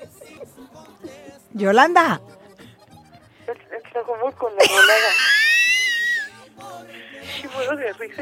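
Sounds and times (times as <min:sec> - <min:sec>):
laughter: 0:00.0 - 0:01.2, 0:04.6 - 0:06.4, 0:07.1 - 0:08.2
speech: 0:01.6 - 0:02.3, 0:04.4 - 0:05.4, 0:07.7 - 0:08.2
woman caller screaming over the phone in Tlajomulco: 0:04.6 - 0:06.3.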